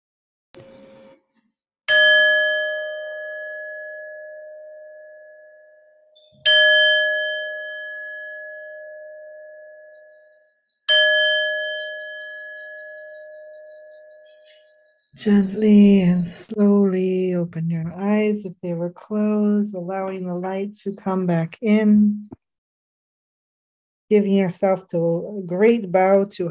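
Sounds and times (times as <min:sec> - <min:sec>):
meditation bell struck to close practice: 0:01.9 - 0:15.0
speech: 0:15.2 - 0:22.4, 0:24.1 - 0:26.4.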